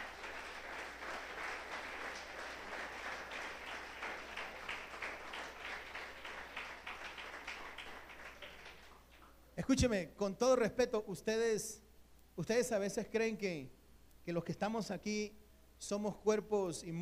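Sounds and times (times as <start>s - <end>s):
congregation applauding at a church sermon: 0.0s - 9.4s
speech: 9.6s - 11.8s, 12.4s - 17.0s.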